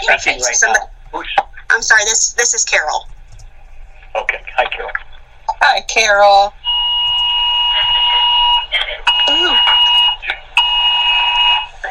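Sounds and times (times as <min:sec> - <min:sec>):
speech: 0:00.0 - 0:03.2, 0:04.2 - 0:06.6
voices: 0:00.0 - 0:10.7, 0:11.6 - 0:11.9
emergency weather alert alarm blaring two-tone: 0:06.6 - 0:11.7.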